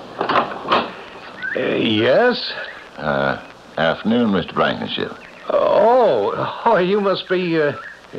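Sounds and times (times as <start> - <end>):
door being opened: 0.2 - 1.0
speech: 1.6 - 5.2, 6.4 - 8.1.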